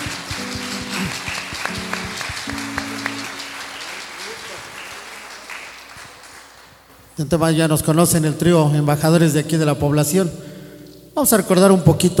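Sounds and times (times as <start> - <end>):
tonal sounds: 0.0 - 4.7
audience applause for an honored guest at a community event in San Pedro Atlapulco: 0.0 - 6.9
speech: 7.2 - 10.5, 11.2 - 12.1.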